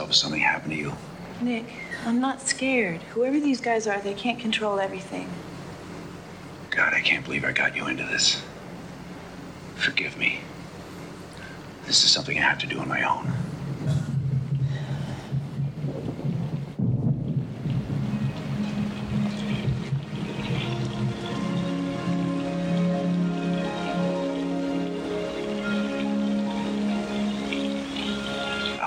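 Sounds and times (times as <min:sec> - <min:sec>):
dense rain hissing: 0:00.0 - 0:28.8
speech: 0:00.1 - 0:05.5, 0:06.8 - 0:08.5, 0:09.8 - 0:10.5, 0:11.9 - 0:14.1
low sustained droning tone: 0:13.3 - 0:28.8.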